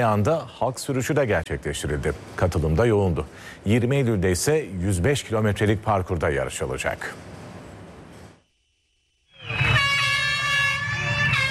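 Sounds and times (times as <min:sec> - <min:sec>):
speech: 0:00.0 - 0:07.3
horns blaring at the start of a mass public bicycle ride: 0:09.4 - 0:11.4.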